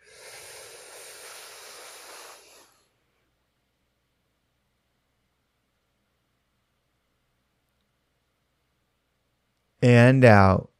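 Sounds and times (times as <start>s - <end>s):
deep breath in: 0.0s - 2.9s
speech: 9.8s - 10.7s.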